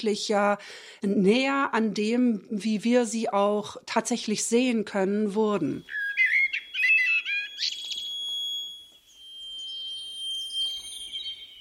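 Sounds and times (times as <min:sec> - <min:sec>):
speech: 0:00.0 - 0:06.0
common blackbird singing: 0:05.8 - 0:11.5.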